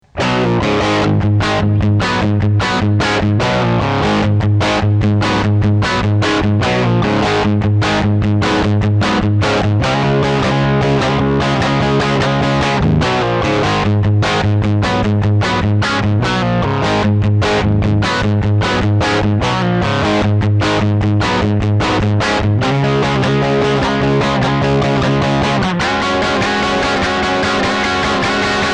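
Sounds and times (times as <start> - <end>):
rock music with multi-effects: 0.0 - 28.7.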